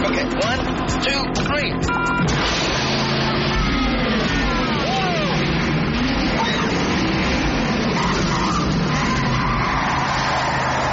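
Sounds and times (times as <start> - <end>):
speech: 0.4 - 2.1
skidding tire squeal: 2.1 - 10.9
car turbo boost sound effect: 2.2 - 10.9.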